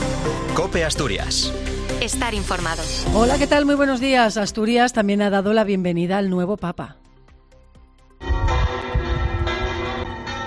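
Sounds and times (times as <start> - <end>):
speech: 0.6 - 7.0
church bells pealing: 8.5 - 10.4.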